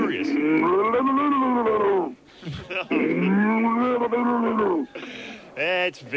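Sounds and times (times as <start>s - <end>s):
man's voice imitating a drowning cow: 0.0s - 4.9s
speech: 0.1s - 4.9s, 5.6s - 6.1s.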